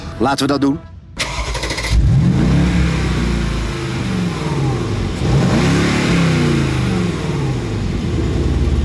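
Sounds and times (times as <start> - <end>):
speech: 0.2 - 0.9
V8 car engine revving: 1.2 - 8.8.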